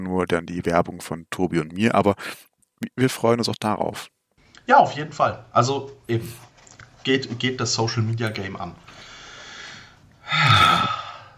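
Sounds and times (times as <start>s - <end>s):
speech: 0.0s - 9.1s
audible breathing: 8.8s - 11.3s.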